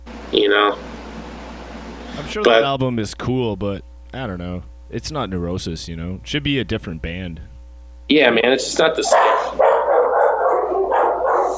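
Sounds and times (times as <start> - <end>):
speech: 0.3 - 0.9, 2.2 - 7.5, 8.1 - 9.6
dogs barking: 8.9 - 11.5.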